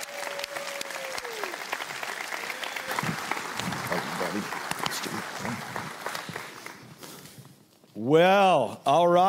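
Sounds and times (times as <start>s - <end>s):
faint cheers: 0.0s - 1.6s
audience applause: 0.0s - 7.0s
speech: 8.1s - 9.2s.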